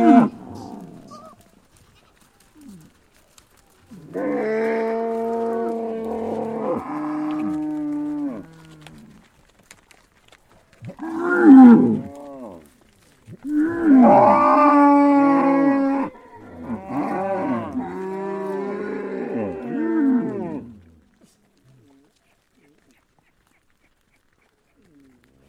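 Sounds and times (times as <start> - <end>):
cow mooing in long drawn-out calls: 0.0 - 1.4, 4.0 - 9.0, 13.5 - 20.7.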